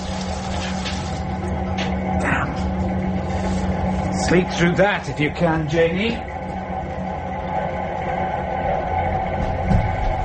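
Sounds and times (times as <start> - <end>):
Welsh water running into a container: 0.0 - 1.3
low humming undertone: 0.0 - 10.2
speech: 4.3 - 6.3.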